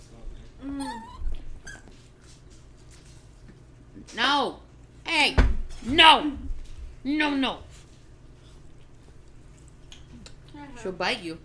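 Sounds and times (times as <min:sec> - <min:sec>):
dog whimpering and crying in high wavering whines: 0:00.6 - 0:01.9
speech: 0:04.2 - 0:06.4, 0:07.0 - 0:07.7, 0:10.8 - 0:11.4.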